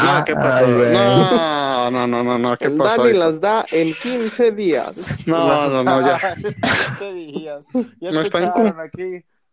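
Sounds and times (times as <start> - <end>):
laughter from several people: 0.0 - 2.2, 5.0 - 8.8
speech: 0.1 - 9.3
loud sneeze: 6.6 - 7.0.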